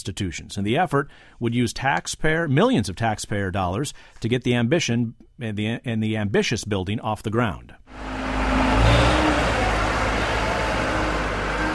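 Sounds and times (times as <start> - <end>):
speech: 0.0 - 8.2
dump trucks and bulldozers on a science museum construction site: 7.9 - 11.7.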